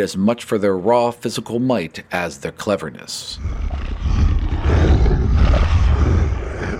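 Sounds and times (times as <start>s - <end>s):
speech: 0.0s - 4.2s
15-foot-tall boar creature roaring: 3.4s - 6.7s.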